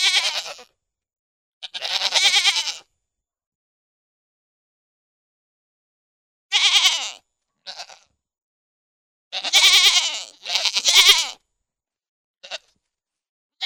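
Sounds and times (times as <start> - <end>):
pygmy goat bleating: 0.0 - 0.7, 1.6 - 2.9, 6.5 - 8.1, 9.3 - 11.4, 12.4 - 12.8.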